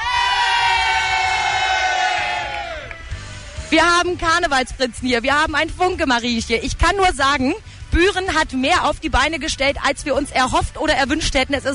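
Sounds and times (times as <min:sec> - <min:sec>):
costumed crowd of about 600 people cheering at a party in Büren: 0:00.0 - 0:03.7
speech: 0:03.7 - 0:11.7.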